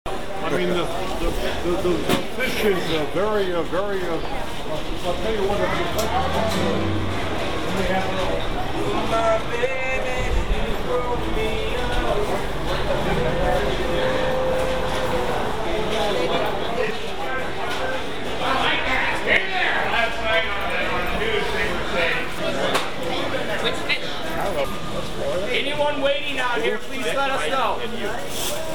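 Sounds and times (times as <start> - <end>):
Pike market ambience: 0.1 - 28.7.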